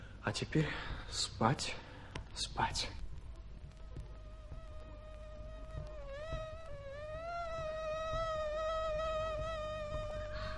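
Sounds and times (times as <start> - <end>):
speech: 0.3 - 3.0
mosquitoes buzzing: 3.3 - 10.5.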